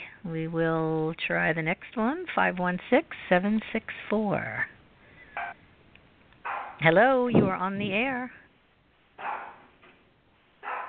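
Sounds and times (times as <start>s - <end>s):
speech: 0.2s - 4.8s, 6.8s - 8.4s
dog barking through a telephone line: 5.4s - 5.6s, 6.4s - 6.8s, 9.2s - 9.7s, 10.6s - 10.8s.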